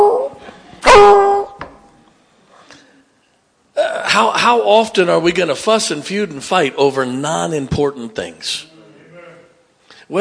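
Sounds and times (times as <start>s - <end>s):
coon dog baying at a raccoon up a tree: 0.0s - 1.6s
speech: 4.2s - 8.7s.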